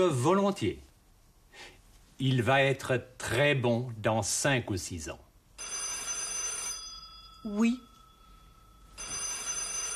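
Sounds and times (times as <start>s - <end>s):
speech: 0.0s - 0.9s, 1.6s - 5.2s, 7.4s - 7.9s
old-fashioned telephone bell ringing with a bright metallic trill: 5.6s - 9.9s.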